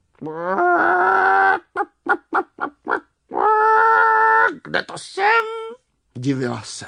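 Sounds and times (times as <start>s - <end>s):
speech: 0.2s - 0.6s, 4.7s - 5.5s, 6.2s - 6.8s
hen clucking: 0.2s - 4.6s.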